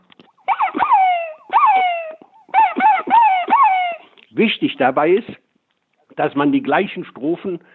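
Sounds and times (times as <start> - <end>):
person imitating fox barks with inhaled yelping calls to lure foxes: 0.4 - 4.2
speech: 4.4 - 5.4, 6.2 - 7.7.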